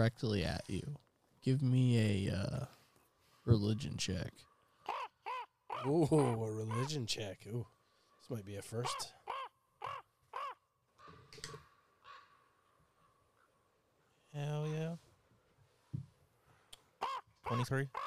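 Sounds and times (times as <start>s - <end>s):
speech: 0.0s - 2.8s, 3.4s - 4.5s, 5.8s - 9.2s, 14.3s - 15.0s, 17.4s - 18.0s
raven cawing: 4.4s - 6.9s, 8.8s - 13.2s, 17.0s - 18.0s.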